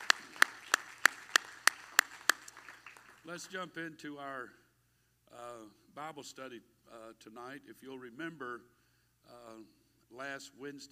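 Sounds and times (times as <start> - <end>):
church audience clapping hands: 0.0 - 3.6
speech: 3.3 - 4.6, 5.3 - 10.9.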